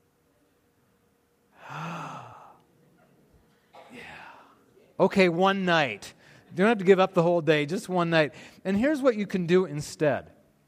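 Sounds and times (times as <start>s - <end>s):
person gasping in shock: 1.6s - 2.6s, 3.9s - 4.6s
speech: 5.0s - 10.4s.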